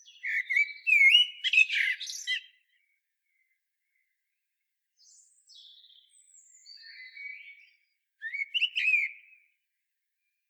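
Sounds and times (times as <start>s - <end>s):
common blackbird Turdus merula singing rich fluty phrases: 0.0s - 2.7s, 5.0s - 9.4s.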